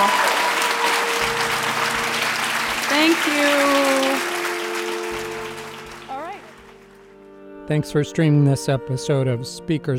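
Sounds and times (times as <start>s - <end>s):
audience applause after an onstage conversation: 0.0s - 7.2s
speech: 7.7s - 9.9s.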